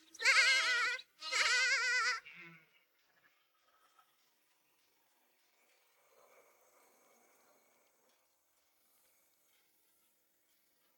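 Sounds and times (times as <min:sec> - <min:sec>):
lamb bleating: 0:00.2 - 0:02.6.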